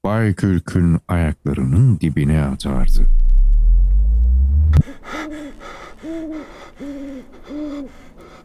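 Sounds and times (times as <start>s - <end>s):
speech: 0.1s - 3.2s, 6.0s - 8.0s
loud low rumble: 2.6s - 4.9s
owl hooting: 4.8s - 8.1s.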